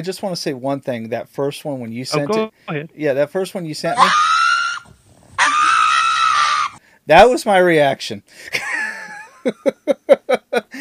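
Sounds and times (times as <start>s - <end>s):
speech: 0.0s - 4.3s, 7.1s - 8.6s, 9.4s - 10.7s
pug dog screaming during nail clipping: 3.9s - 6.8s
laughter: 8.5s - 10.7s.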